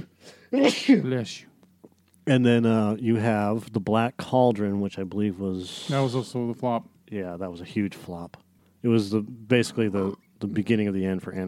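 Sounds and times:
sneeze: 0.0 - 1.1
speech: 0.5 - 1.5, 2.3 - 11.4.

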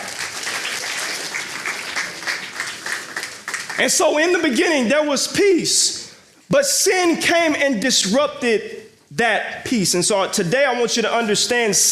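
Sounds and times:
audience applause: 0.0 - 3.8
speech: 3.8 - 11.8.

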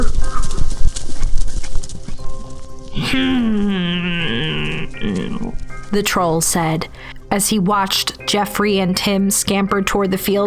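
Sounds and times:
goat hooves clopping on a hard surface: 0.0 - 8.1
loud drawn-out animal cry: 3.0 - 5.7
speech: 6.0 - 10.4.

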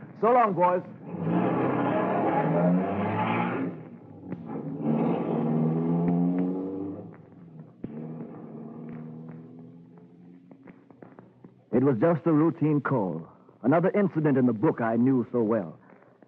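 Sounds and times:
speech: 0.2 - 1.4, 11.8 - 15.8
car engine accelerating as the car pulls away: 0.8 - 11.3.

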